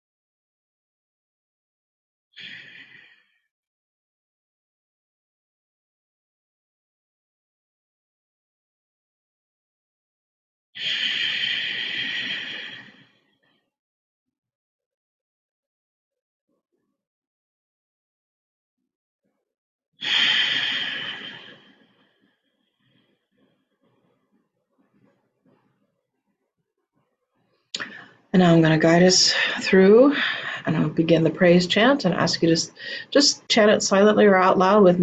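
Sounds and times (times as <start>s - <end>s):
slow deep breathing during a guided centering exercise: 2.4s - 3.5s, 10.8s - 13.7s, 20.0s - 24.3s
speech: 28.4s - 35.0s.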